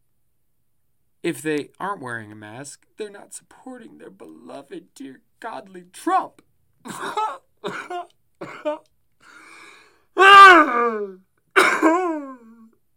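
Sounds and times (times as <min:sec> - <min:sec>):
speech: 0:01.2 - 0:08.9, 0:10.2 - 0:11.2
person coughing theatrically: 0:06.8 - 0:08.9, 0:10.2 - 0:12.7.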